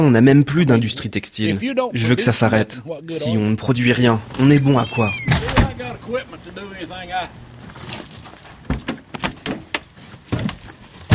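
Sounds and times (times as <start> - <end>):
speech: 0.0 - 8.0
Jeep door slamming shut: 5.2 - 6.0
clunks and rustling thumps of people climbing into a Jeep: 5.3 - 6.0, 7.6 - 11.1.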